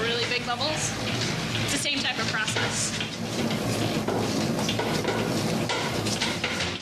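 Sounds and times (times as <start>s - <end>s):
speech: 0.5s - 4.1s
doughnut dough slapping against a mixing bowl while being kneaded: 2.4s - 6.8s.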